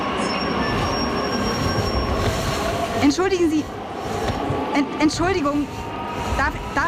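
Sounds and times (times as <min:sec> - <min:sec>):
train wheels giving off a thin high-pitched metallic squeal: 0:00.0 - 0:02.9
crowded train rumbling into a main railway station: 0:00.0 - 0:06.8
speech: 0:03.0 - 0:03.8, 0:04.8 - 0:06.8.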